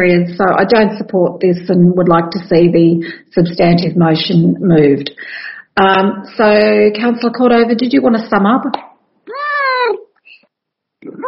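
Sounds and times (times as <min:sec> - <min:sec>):
speech: 0:00.0 - 0:09.4
pet cat meowing: 0:09.3 - 0:10.0.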